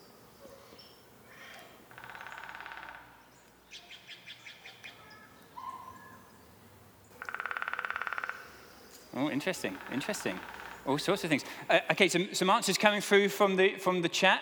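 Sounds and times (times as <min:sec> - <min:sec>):
woodpecker calling with buzzy trilled rattles: 0:00.0 - 0:12.0
speech: 0:09.2 - 0:14.4.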